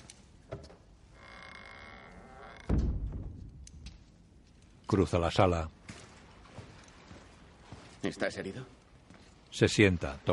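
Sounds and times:
door closing with a dull low thud: 2.6 - 3.4
speech: 4.9 - 5.8, 8.0 - 8.8, 9.5 - 10.3.

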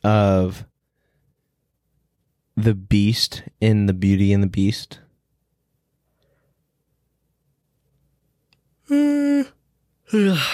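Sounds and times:
speech: 0.0 - 0.7, 2.6 - 5.0, 8.9 - 10.5
person yawning: 8.9 - 10.5.

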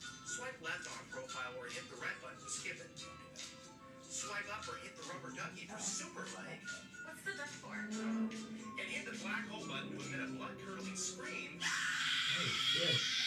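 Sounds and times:
speech: 0.4 - 13.2
loud harsh raspy blood-curdling scream from app button: 7.7 - 13.2.

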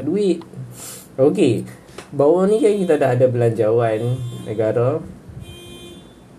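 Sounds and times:
speech: 0.0 - 5.2
hiss: 0.0 - 6.3
car horn honking outside: 2.4 - 6.3.

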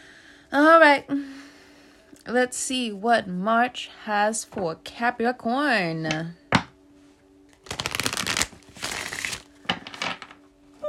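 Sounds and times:
faint steady hum: 0.0 - 10.8
speech: 0.5 - 1.4, 2.3 - 6.4
tarot cards being shuffled for a tarot reading: 7.6 - 10.4.

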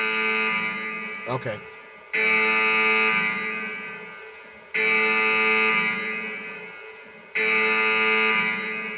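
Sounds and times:
loud harmonic alarm tone: 0.0 - 8.9
speech: 1.3 - 2.4.

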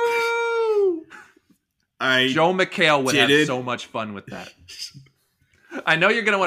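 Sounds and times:
person imitating a howl: 0.0 - 1.1
speech: 2.0 - 5.1, 5.8 - 6.4.

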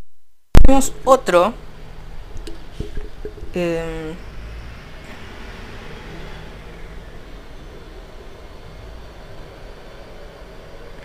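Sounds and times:
faint hum: 0.6 - 11.0
speech: 0.7 - 1.6, 3.6 - 4.3
person drinking water with wet swallowing and gulping: 2.3 - 3.7.

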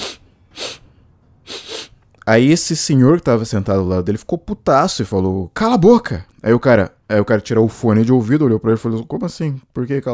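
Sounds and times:
voice imitating a young man with a cold sniffling: 0.0 - 2.0
speech: 2.3 - 10.1.

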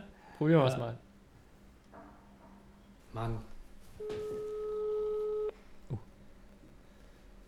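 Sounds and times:
speech: 0.4 - 1.1, 3.1 - 3.5
telephone ringback tone on outgoing call: 4.0 - 5.5.

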